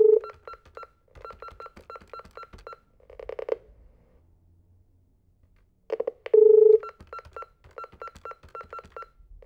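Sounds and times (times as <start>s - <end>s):
telephone receiver: 0.1s - 3.6s, 5.9s - 9.1s.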